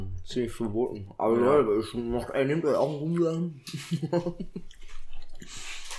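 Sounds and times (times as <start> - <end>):
speech: 0.3 - 5.7
laughter: 3.7 - 4.7
person chewing food: 4.4 - 5.9.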